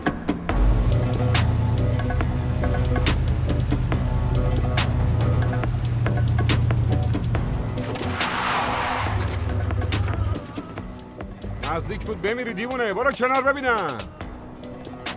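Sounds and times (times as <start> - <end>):
car engine rumbling: 0.0 - 12.3
car tires skidding under hard braking: 1.1 - 11.0
speech: 12.1 - 14.2.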